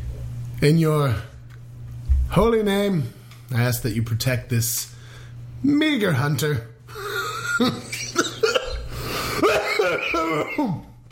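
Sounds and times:
speech: 0.6s - 1.3s, 2.3s - 5.0s, 5.6s - 7.0s, 7.6s - 7.9s, 10.1s - 10.9s
rough throaty coughs: 7.5s - 11.0s.

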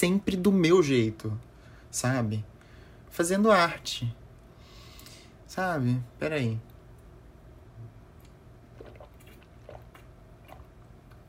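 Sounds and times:
speech: 0.0s - 2.5s, 3.1s - 4.2s, 5.5s - 6.7s
quiet hiss: 0.0s - 11.2s
person drinking water with soft wet gulps: 8.2s - 11.2s.

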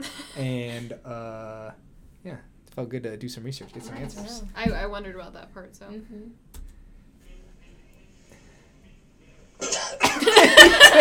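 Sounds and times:
speech: 0.0s - 6.6s
person coughing after taking a sip of a drink: 9.6s - 10.4s
laughter: 10.0s - 10.9s.

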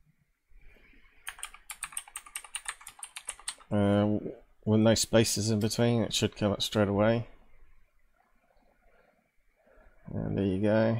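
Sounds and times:
computer keyboard typing: 1.3s - 3.7s
speech: 3.7s - 7.3s, 10.7s - 10.9s.

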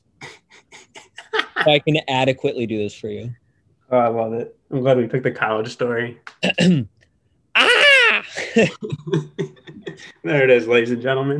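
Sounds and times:
choppy bursts of laughter: 0.5s - 1.8s, 7.6s - 10.1s
speech: 1.6s - 7.0s, 8.5s - 11.3s
person imitating a triumphant basketball putback scream: 7.6s - 8.3s.

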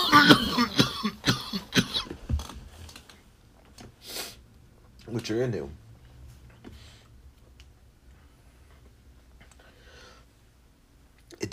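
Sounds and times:
loud fit of harsh coughing: 0.0s - 2.2s
speech: 5.3s - 5.8s
soft breathy exhale: 9.6s - 10.3s.

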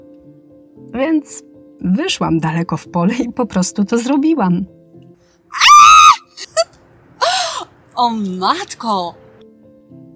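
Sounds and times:
speech: 1.0s - 4.8s, 8.0s - 9.2s
woman screaming high-pitched in an open field: 5.5s - 7.7s.

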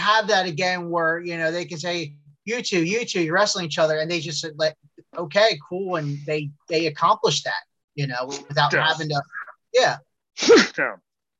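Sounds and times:
speech: 0.1s - 11.0s
loud sneeze: 10.4s - 10.8s.

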